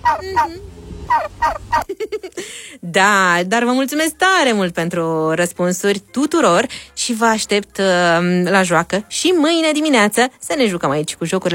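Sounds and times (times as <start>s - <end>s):
turkey gobbling: 0.0s - 1.9s
speech: 0.1s - 11.5s.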